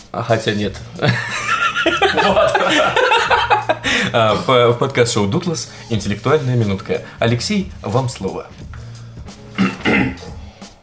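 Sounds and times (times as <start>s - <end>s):
speech: 0.1s - 8.8s
laughter: 1.0s - 4.7s
man clearing throat: 9.5s - 10.4s
short grunt: 9.6s - 10.4s.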